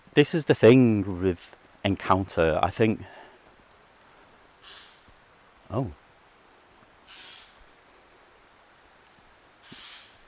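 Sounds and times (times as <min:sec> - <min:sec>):
speech: 0:00.2 - 0:03.2, 0:05.7 - 0:06.0
crow cawing: 0:04.6 - 0:05.1, 0:07.1 - 0:07.6, 0:09.6 - 0:10.2.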